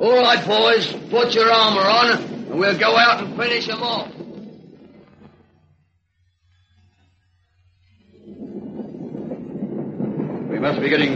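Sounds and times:
speech: 0.0 - 4.2, 10.6 - 11.1
steam train approaching: 0.0 - 5.5, 7.9 - 11.1
steady low hum: 0.0 - 11.1.

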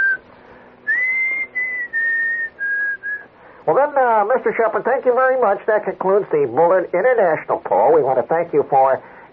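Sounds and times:
man whistling a short tune: 0.0 - 0.2, 0.8 - 3.3
speech: 3.7 - 9.2.

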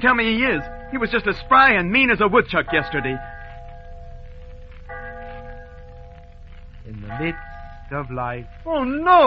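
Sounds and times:
speech: 0.0 - 3.3, 6.9 - 9.2
church bell tolling: 0.0 - 9.2.

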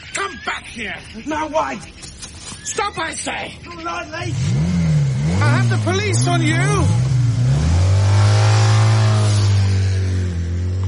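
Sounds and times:
speech: 0.8 - 2.0, 2.6 - 4.7, 5.4 - 7.2
motorbike engine revving and accelerating away: 4.2 - 10.8.

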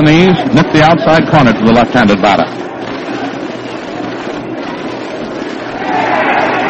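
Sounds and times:
speech: 0.0 - 2.6
large baseball stadium crowd roaring: 5.2 - 6.6
stadium crowd shouting urgently: 5.8 - 6.6.

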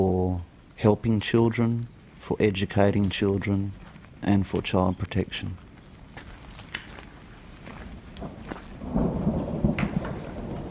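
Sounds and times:
steady rain: 0.0 - 10.6
speech: 0.3 - 5.6
deep roll of thunder: 7.9 - 10.6.

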